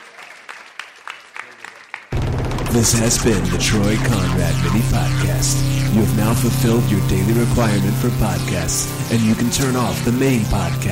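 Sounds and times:
audience applauding: 0.0 - 2.7
speech: 2.8 - 10.8.

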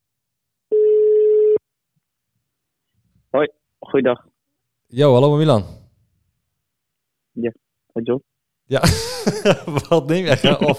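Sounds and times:
telephone ringing tone on an outgoing call: 0.7 - 1.6
speech: 3.3 - 4.3, 4.9 - 5.8, 7.4 - 10.7
laughter: 8.7 - 10.7.

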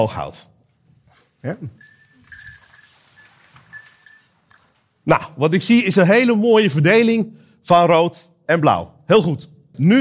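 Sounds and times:
speech: 0.0 - 0.5, 1.4 - 2.1, 5.0 - 10.0
small bell rung as a signal for an audience: 1.8 - 4.8.

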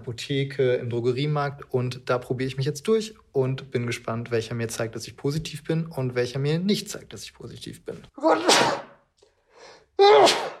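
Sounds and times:
speech: 0.0 - 8.8, 10.0 - 10.4
person sneezing during nasal rapid test swab: 8.2 - 9.0, 10.0 - 10.5.

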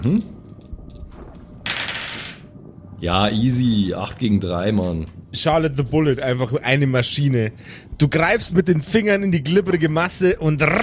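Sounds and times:
speech: 0.0 - 0.5, 3.0 - 10.8
dice clattering onto a hard tabletop: 1.7 - 2.4.

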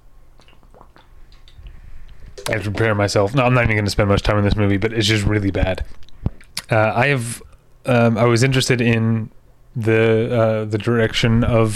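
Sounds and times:
person sipping water: 0.4 - 2.6
speech: 2.5 - 6.0, 6.7 - 11.7.

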